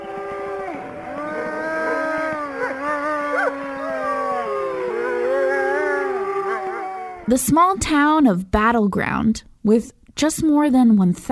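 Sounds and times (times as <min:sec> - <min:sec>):
wolves howling in chorus at a wolf park in Battleground Indiana: 0:00.0 - 0:07.3
speech: 0:07.3 - 0:11.3.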